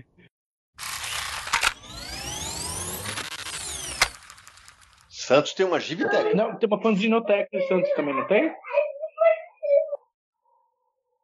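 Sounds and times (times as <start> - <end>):
speech: 5.3 - 8.7
young child crying in high-pitched wailing bursts: 7.5 - 10.0.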